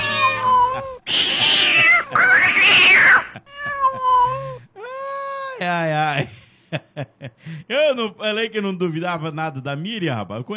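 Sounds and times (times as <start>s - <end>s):
cat meowing: 0.0s - 4.6s
speech: 5.7s - 10.5s.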